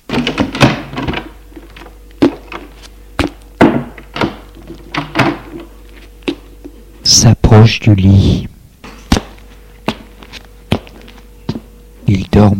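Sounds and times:
bedroom door opening: 0.0s - 5.7s
speech: 7.2s - 8.5s.

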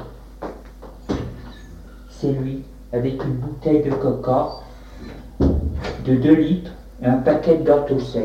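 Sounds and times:
door creaking: 1.0s - 2.2s
speech: 2.2s - 5.2s, 6.0s - 8.2s.

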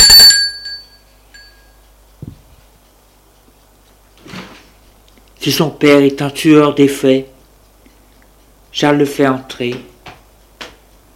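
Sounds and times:
doorbell chime: 0.0s - 1.8s
soft thumps: 2.2s - 2.6s
speech: 5.4s - 7.3s, 8.8s - 9.9s.

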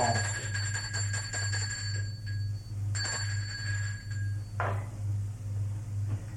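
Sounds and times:
doorbell chiming: 0.0s - 4.8s
steady low pulsing hum: 0.0s - 6.3s.

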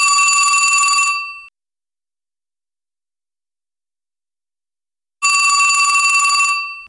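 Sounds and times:
telephone ringing with metallic trill: 0.0s - 1.5s, 5.2s - 6.8s.

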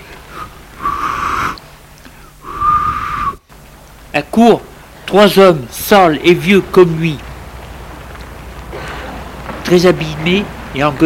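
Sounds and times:
loud whistles blown through the fingers: 2.5s - 3.4s
speech: 4.2s - 7.2s, 9.7s - 11.0s.

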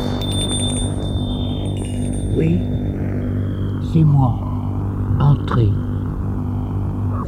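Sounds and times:
electronic gate bell ringing at the gate of a house: 0.0s - 3.0s
low rumble: 0.0s - 7.2s
speech: 2.4s - 2.7s, 3.9s - 4.5s, 5.1s - 5.8s.

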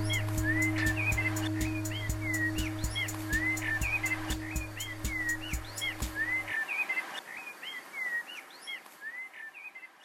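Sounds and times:
low mechanical hum: 0.0s - 6.5s
bird song: 0.0s - 10.0s.

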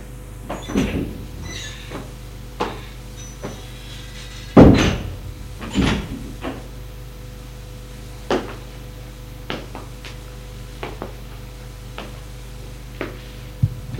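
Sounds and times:
steady low hum: 0.2s - 7.1s, 13.5s - 13.9s
bedroom door shutting: 0.4s - 6.7s.

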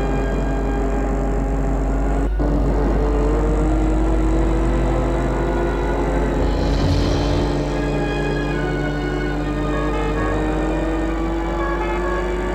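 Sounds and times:
car engine humming while driving to the airport: 0.0s - 12.5s.

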